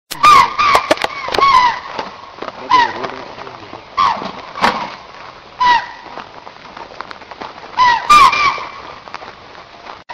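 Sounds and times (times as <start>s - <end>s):
scimitar oryx calling: 0.1s - 6.6s, 7.6s - 9.2s.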